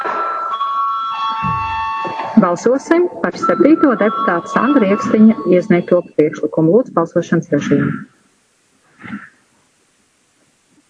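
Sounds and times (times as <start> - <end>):
electric bell rung to call a vote in parliament: 0.0 - 6.6
low buzzing hum: 1.4 - 10.8
speech: 2.4 - 8.1.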